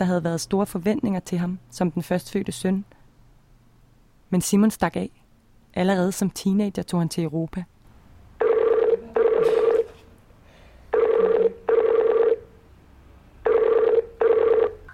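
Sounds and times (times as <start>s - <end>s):
speech: 0.0s - 3.0s, 4.3s - 5.2s, 5.8s - 7.7s
Skype call ringtone: 8.4s - 9.9s, 10.9s - 12.5s, 13.4s - 14.9s.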